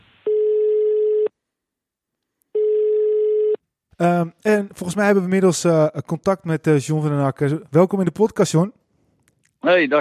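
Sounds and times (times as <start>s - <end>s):
telephone call ringback tone: 0.3s - 1.3s, 2.6s - 3.6s
speech: 4.0s - 8.8s, 9.6s - 9.9s.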